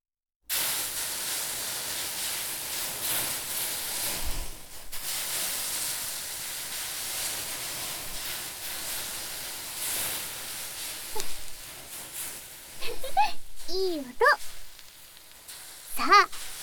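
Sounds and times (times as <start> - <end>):
water poured on hot sauna stones sizzling: 0.5 - 16.6.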